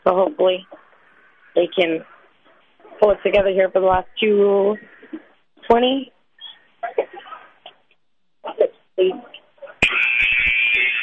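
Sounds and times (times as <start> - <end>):
speech: 0.0 - 0.8, 1.6 - 2.1, 3.0 - 6.2, 9.0 - 9.3
game buzzer at a women's basketball game blaring: 9.8 - 11.0.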